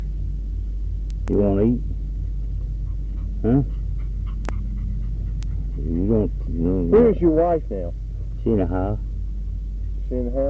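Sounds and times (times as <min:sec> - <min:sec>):
low steady hum: 0:00.0 - 0:10.4
speech: 0:01.3 - 0:02.0, 0:03.4 - 0:03.8, 0:05.9 - 0:09.1, 0:10.1 - 0:10.4
small dog whimpering: 0:02.9 - 0:07.0.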